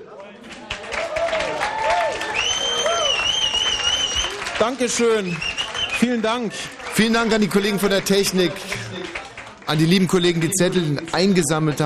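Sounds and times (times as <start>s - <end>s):
audience applause: 0.0s - 11.8s
people cheering: 0.0s - 11.8s
people whistling: 2.2s - 6.7s
speech: 4.6s - 8.7s, 9.7s - 11.8s.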